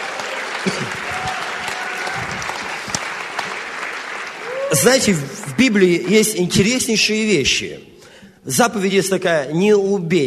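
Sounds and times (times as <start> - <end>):
audience applauding: 0.0 - 6.5
speech: 4.7 - 10.2.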